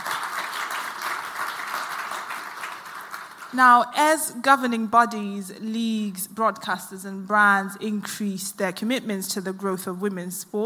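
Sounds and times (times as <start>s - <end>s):
audience applauding to welcome panel guests: 0.0s - 3.5s
speech: 3.5s - 10.6s.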